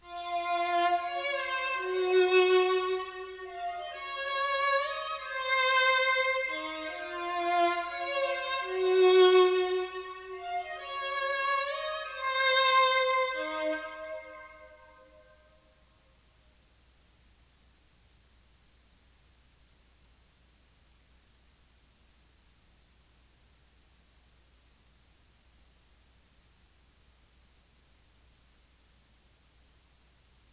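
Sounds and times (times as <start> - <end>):
violin loop in A sharp minor: 0.0 - 14.9.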